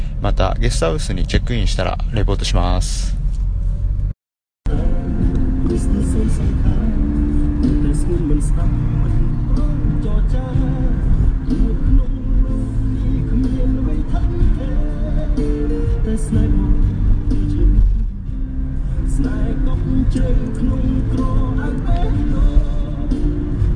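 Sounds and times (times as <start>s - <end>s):
road rumble inside a moving taxi: 0.0s - 4.1s, 4.7s - 23.7s
speech: 0.2s - 3.2s
loud music with vocals from car speakers: 4.7s - 23.7s.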